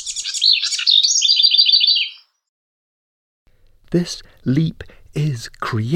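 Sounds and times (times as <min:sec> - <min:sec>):
bird singing high-pitched chirps and trills: 0:00.0 - 0:02.4
speech: 0:03.9 - 0:05.9.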